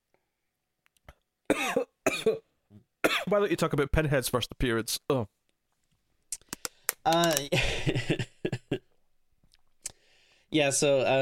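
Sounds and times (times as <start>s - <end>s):
man coughing: 1.5s - 3.3s
speech: 2.2s - 2.4s, 3.3s - 5.4s, 7.1s - 8.4s, 10.5s - 11.2s.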